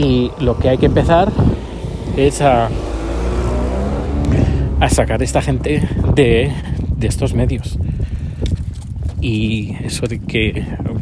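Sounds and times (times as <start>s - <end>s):
speech: 0.0s - 2.9s, 4.8s - 7.9s, 9.2s - 10.9s
car engine rumbling past: 0.0s - 6.6s.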